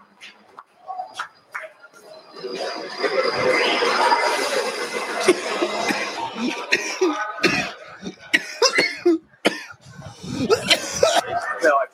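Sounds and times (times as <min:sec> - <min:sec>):
laughter: 0:02.4 - 0:11.9
person in a harsh coughing fit: 0:05.2 - 0:11.4
throat clearing: 0:05.3 - 0:11.4.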